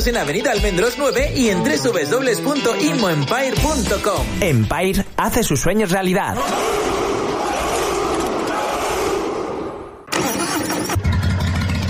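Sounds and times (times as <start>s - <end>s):
speech: 0.0s - 7.0s
loud dense roar: 6.4s - 10.0s
motorcycle or car engine starting and idling: 10.1s - 11.8s.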